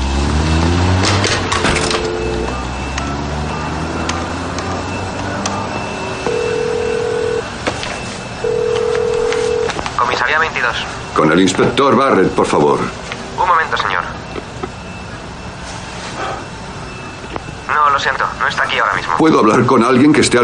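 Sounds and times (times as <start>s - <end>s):
low traffic rumble: 0.0s - 20.4s
telephone ringing beeps: 1.4s - 15.6s
telephone number being dialed with short electronic tones: 1.5s - 4.2s, 6.2s - 7.5s, 8.4s - 10.2s
speech: 10.6s - 13.0s, 18.0s - 20.4s.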